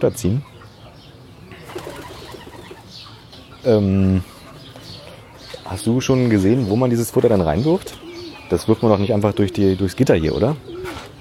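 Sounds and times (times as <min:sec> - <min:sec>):
speech: 0:00.0 - 0:00.5, 0:03.6 - 0:04.3, 0:05.7 - 0:11.0
pigeon cooing overhead: 0:01.4 - 0:03.2, 0:07.7 - 0:11.1.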